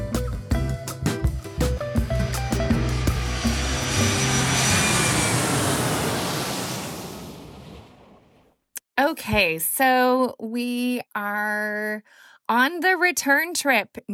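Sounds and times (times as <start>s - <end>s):
airplane engines roaring during takeoff: 1.2s - 8.4s
speech: 9.2s - 14.1s.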